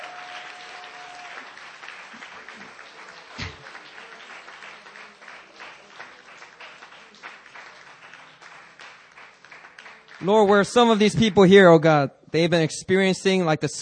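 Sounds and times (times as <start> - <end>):
large group applauding: 0.0 - 11.0
speech: 10.2 - 13.8.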